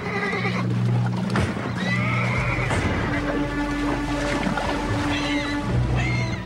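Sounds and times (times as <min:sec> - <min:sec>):
horse whinnying: 0:00.0 - 0:00.7, 0:01.7 - 0:03.3
horse hoofbeats: 0:00.0 - 0:05.6
steady rush of water: 0:00.0 - 0:06.4.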